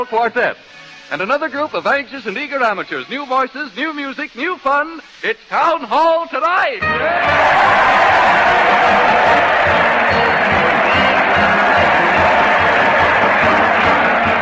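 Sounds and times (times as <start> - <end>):
speech: 0.0 - 10.4
large crowd cheering at parade: 6.8 - 14.4.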